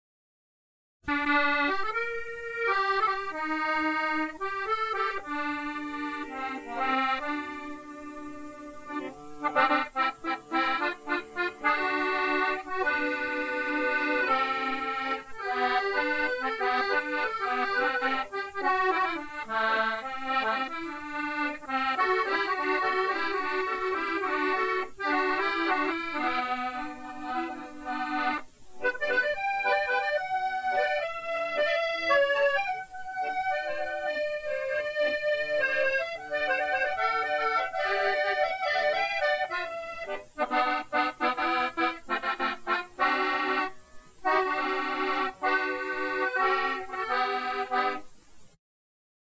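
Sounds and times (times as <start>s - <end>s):
accordion playing: 1.1s - 48.2s.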